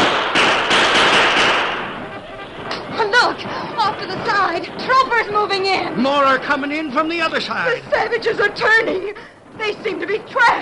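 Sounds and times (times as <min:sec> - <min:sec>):
gunshots in a battle: 0:00.0 - 0:02.9
speech: 0:04.5 - 0:10.6.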